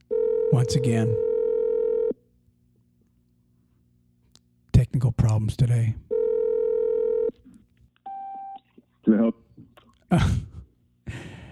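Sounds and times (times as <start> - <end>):
telephone dial tone while redialing a call: 0.1 - 2.2, 6.1 - 7.3
speech: 0.6 - 1.3, 5.0 - 6.1, 10.1 - 10.5.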